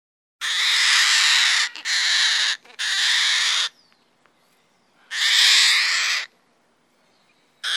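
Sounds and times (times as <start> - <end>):
Goffin's cockatoo screeching: 0.4 - 3.7, 5.1 - 6.3.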